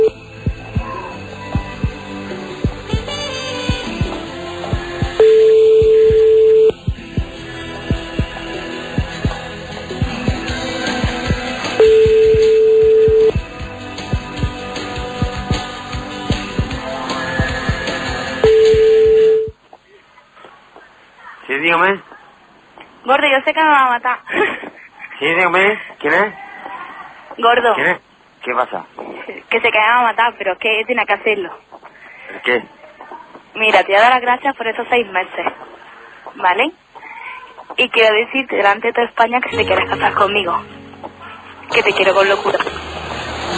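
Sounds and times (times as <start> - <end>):
music: 0.0 - 19.5, 39.5 - 43.5
telephone line ringback tones: 5.2 - 6.8, 11.8 - 13.4, 18.4 - 19.5
speech: 23.4 - 24.6, 25.2 - 26.4, 27.4 - 31.7, 32.3 - 32.8, 33.5 - 35.8, 36.4 - 36.8, 37.7 - 42.8.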